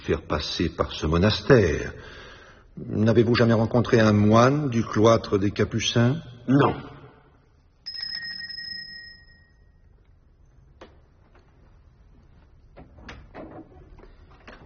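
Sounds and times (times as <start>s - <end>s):
speech: 0.1s - 2.2s, 2.8s - 6.9s
short ringing chime: 7.8s - 9.9s.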